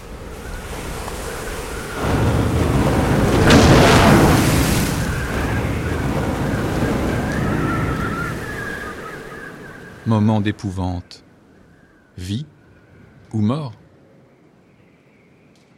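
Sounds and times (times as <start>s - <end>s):
ship lifted by a huge wave crashing onto a coral reef: 0.0s - 10.1s
deep continuous rumble of heavy surf on a reef: 0.0s - 10.9s
speech: 10.1s - 11.3s, 12.2s - 12.6s, 13.3s - 13.8s.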